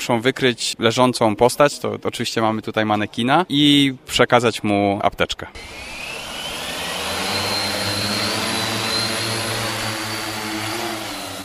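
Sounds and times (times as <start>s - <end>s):
speech: 0.0s - 6.0s
drone propellers buzzing in flight: 5.6s - 11.4s.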